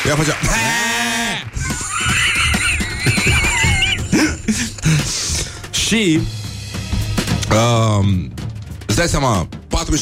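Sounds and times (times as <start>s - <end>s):
speech: 0.1s - 0.8s, 5.9s - 6.4s, 7.5s - 8.4s, 9.0s - 10.0s
laughter: 1.5s - 5.4s
sheep bleating: 1.7s - 4.1s.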